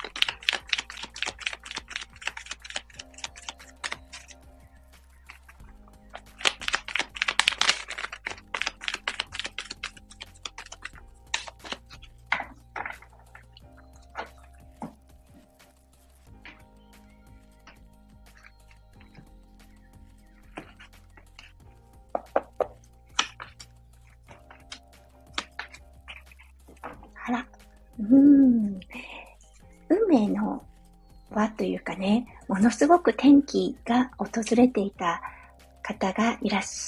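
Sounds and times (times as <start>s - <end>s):
tarot cards being shuffled: 0.0s - 27.8s
soft steady tonal background: 0.0s - 36.8s
speech: 31.6s - 35.3s, 36.0s - 36.8s.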